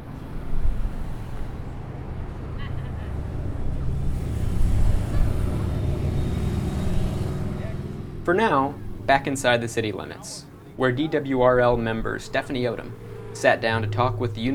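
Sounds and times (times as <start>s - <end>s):
mild wind gusts at a dam: 0.0s - 14.5s
tourists conversing indistinctly at a dam: 7.5s - 14.5s
faint scattered chattering bird calls: 8.3s - 14.5s
speech: 8.3s - 14.5s.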